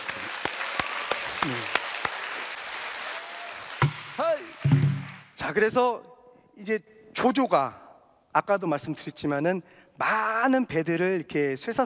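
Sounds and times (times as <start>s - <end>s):
scattered audience clapping at a lecture: 0.0s - 5.4s
speech: 1.4s - 1.8s, 5.5s - 7.8s, 8.4s - 11.8s.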